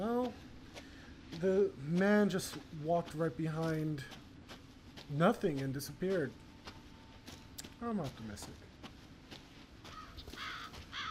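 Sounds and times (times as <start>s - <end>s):
steady low hiss: 0.0s - 9.9s
speech: 1.4s - 4.2s, 5.1s - 6.4s, 7.8s - 8.7s
several crows cawing harshly: 9.8s - 11.0s.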